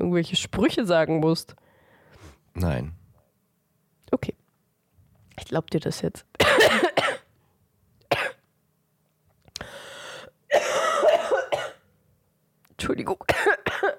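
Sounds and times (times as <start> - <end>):
speech: 0.1 - 1.6, 2.6 - 3.0, 4.1 - 4.4, 5.4 - 6.8, 12.8 - 13.3
harsh coughing: 6.4 - 7.3, 8.1 - 8.4, 10.5 - 11.9, 13.3 - 13.9.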